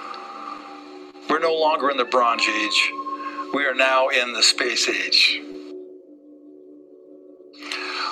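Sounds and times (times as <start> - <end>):
speech: 1.4 - 5.6
gong ringing with overtones: 1.8 - 4.4.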